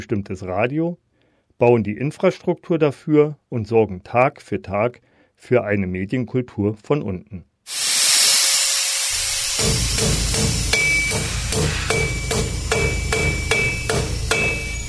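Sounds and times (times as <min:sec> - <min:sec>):
speech: 0:00.0 - 0:07.8, 0:09.6 - 0:12.1
hammering in a workshop building radio antennas, transmitters and masts: 0:09.6 - 0:14.8.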